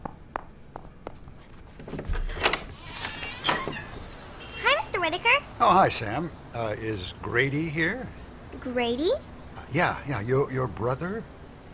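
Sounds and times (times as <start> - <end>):
soft footsteps: 0.0 - 2.2
door being opened to answer a visitor: 1.8 - 5.0
speech: 5.0 - 11.3.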